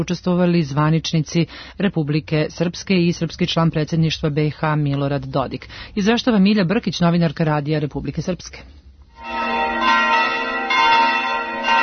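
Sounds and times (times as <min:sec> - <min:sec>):
speech: 0:00.0 - 0:09.4
church bells ringing: 0:09.2 - 0:11.8.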